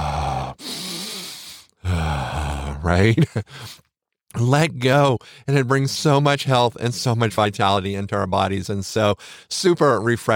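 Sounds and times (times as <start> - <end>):
deep breath with groan-like voiced tone during a relaxation moment: 0.0 - 2.9
speech: 2.8 - 10.3.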